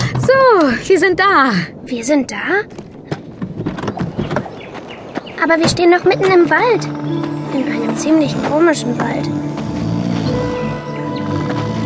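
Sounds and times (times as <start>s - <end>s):
speech: 0.6s - 2.8s, 5.4s - 9.6s
deep rumbling snore-like drone from forest trees: 6.1s - 11.8s.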